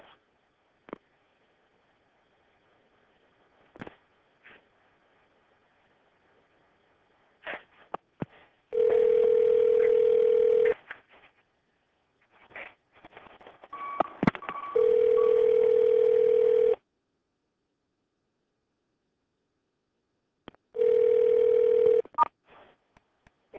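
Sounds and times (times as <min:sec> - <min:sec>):
telephone line dial tone: 0:08.7 - 0:10.7, 0:13.7 - 0:16.8, 0:20.8 - 0:22.3
phone keypad beeps and clicks: 0:13.7 - 0:15.3.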